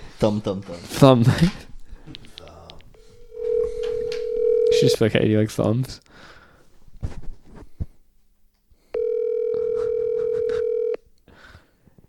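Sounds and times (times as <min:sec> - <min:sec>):
speech: 0:00.2 - 0:02.2, 0:04.8 - 0:06.4
telephone dial tone through a phone speaker: 0:03.3 - 0:05.0, 0:09.0 - 0:11.0.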